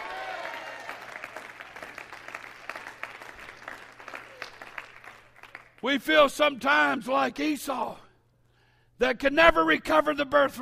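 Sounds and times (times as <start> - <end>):
audience applause: 0.0 - 5.8
speech: 5.8 - 8.0, 9.0 - 10.6.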